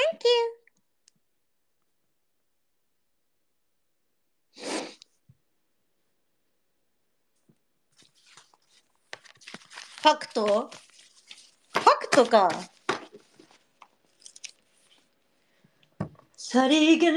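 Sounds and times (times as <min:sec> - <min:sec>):
sneeze: 0:04.6 - 0:05.0
rustling: 0:07.9 - 0:15.2
speech: 0:10.0 - 0:10.8, 0:12.2 - 0:12.7, 0:16.5 - 0:17.1.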